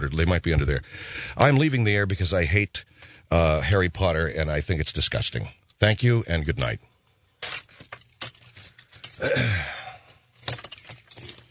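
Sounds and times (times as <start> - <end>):
speech: 0.0 - 7.6, 9.2 - 9.8
bunch of keys jangling: 7.4 - 11.4.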